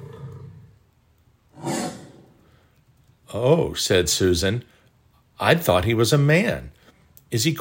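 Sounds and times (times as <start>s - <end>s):
lion roaring: 0.0s - 0.7s, 1.6s - 2.4s
speech: 3.3s - 4.7s, 5.4s - 7.5s.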